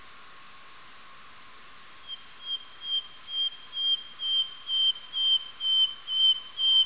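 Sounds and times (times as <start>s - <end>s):
nightingale whistling song: 2.0s - 6.8s.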